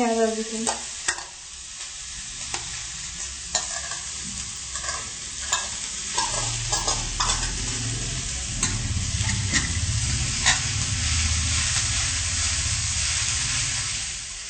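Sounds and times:
food sizzling in a pan: 0:00.0 - 0:14.4
spoon mashing and stirring food in a pan: 0:00.7 - 0:01.4, 0:02.5 - 0:07.6.

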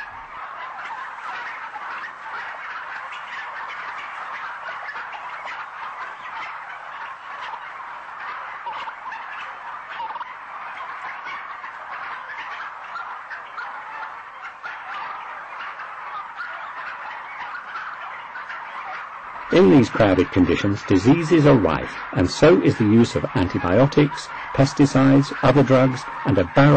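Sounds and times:
chorus of many modern domestic turkeys gobbling in crowded farm conditions: 0:00.0 - 0:26.7
speech: 0:19.6 - 0:26.7.

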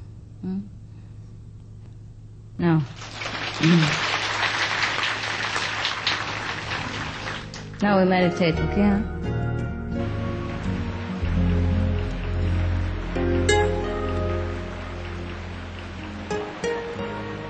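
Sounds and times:
low droning hum: 0:00.0 - 0:03.9, 0:06.7 - 0:17.4
speech: 0:00.4 - 0:00.8, 0:02.7 - 0:04.1, 0:07.8 - 0:09.2
steady rain pouring in Cambodia: 0:02.9 - 0:07.8, 0:10.0 - 0:17.4.

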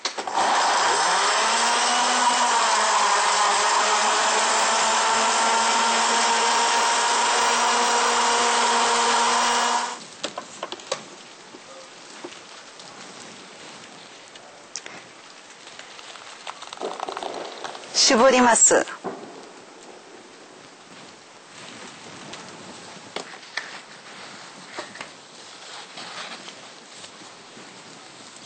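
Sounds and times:
blender blending washed grapes: 0:00.2 - 0:10.0
speech: 0:18.1 - 0:19.1.

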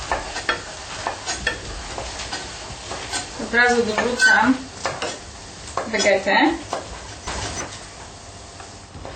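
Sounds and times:
spoon scraping a pot while stirring flour into hot oil for a roux: 0:03.1 - 0:05.2, 0:06.0 - 0:07.8
speech: 0:03.5 - 0:04.7, 0:05.9 - 0:06.7.

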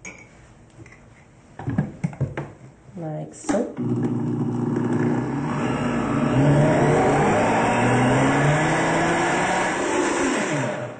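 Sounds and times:
speech: 0:03.0 - 0:04.4
motorized mixer whirring while mixing chocolate fudge with coconut butter: 0:03.8 - 0:10.9.

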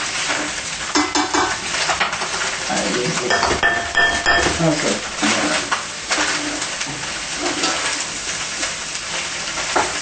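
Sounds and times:
low frying hiss: 0:00.0 - 0:10.0
spoon stirring mushroom and eggplant with sausage in an iron pot: 0:03.3 - 0:04.9.

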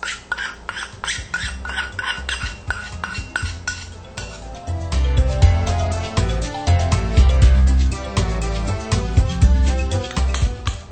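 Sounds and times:
utensil clinking and scraping against a bowl mixing baking soda with vinegar: 0:00.0 - 0:04.6, 0:05.6 - 0:10.9.

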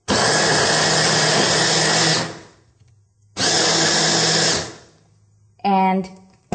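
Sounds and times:
food processor blade chopping carrots: 0:00.1 - 0:02.5, 0:03.4 - 0:04.9
speech: 0:05.9 - 0:06.2.

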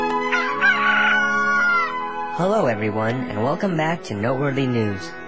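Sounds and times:
rooster crowing: 0:00.2 - 0:02.1
speech: 0:03.1 - 0:05.2.

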